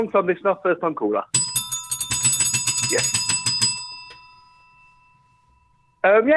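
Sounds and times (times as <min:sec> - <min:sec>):
speech: 0:00.0 - 0:01.4, 0:02.9 - 0:03.2, 0:06.0 - 0:06.3
bell ringing: 0:01.4 - 0:06.3.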